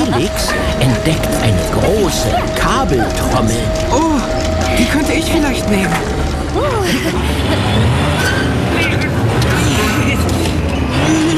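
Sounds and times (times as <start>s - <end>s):
laughter: 0.0s - 11.3s
small vehicle engine straining to pull load: 0.0s - 11.3s
vocal sounds: 0.0s - 11.3s
speech: 0.2s - 1.3s, 2.1s - 9.0s.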